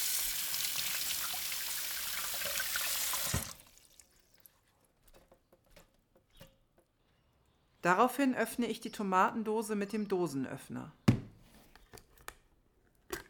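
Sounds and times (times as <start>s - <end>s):
water running from a kitchen tap: 0.0s - 4.3s
speech: 7.8s - 11.0s.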